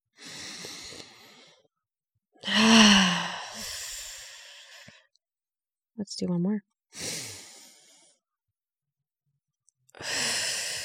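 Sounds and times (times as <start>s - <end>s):
deep breath taken in and out as part of a calming practice: 0.1s - 1.7s, 2.4s - 5.1s, 7.0s - 8.2s, 10.0s - 10.8s
speech: 6.0s - 7.2s.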